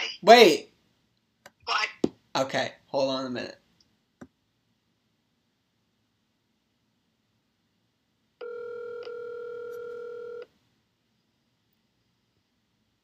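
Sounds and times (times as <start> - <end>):
speech: 0.2 - 0.7, 2.4 - 3.6
telephone ringback tone of an unanswered call: 8.4 - 10.5.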